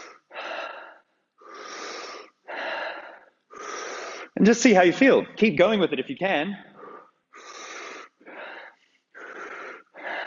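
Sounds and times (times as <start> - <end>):
rapid heavy breathing during a breathing exercise: 0.0 - 4.4, 6.6 - 10.2
speech: 4.4 - 6.7.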